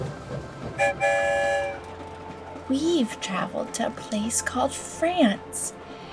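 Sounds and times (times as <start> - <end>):
train rolling on rails: 0.0 - 6.1
loud bright train horn blasts: 0.7 - 2.0
speech: 0.8 - 1.3, 2.7 - 5.8.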